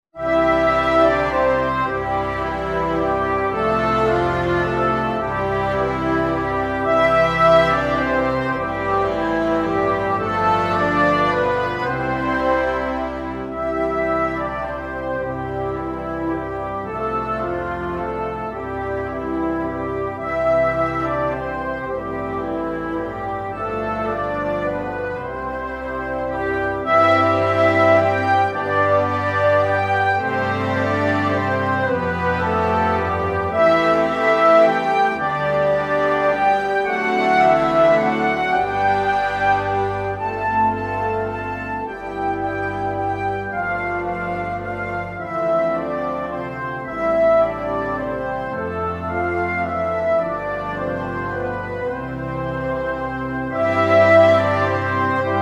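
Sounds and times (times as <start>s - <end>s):
orchestral score with brass: 0.0s - 55.4s.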